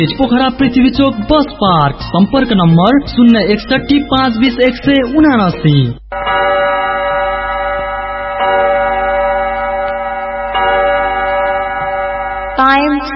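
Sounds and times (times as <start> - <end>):
speech: 0.0 - 6.3, 12.7 - 13.1
radio studio clock time signal bell-like chime tones: 6.2 - 13.1.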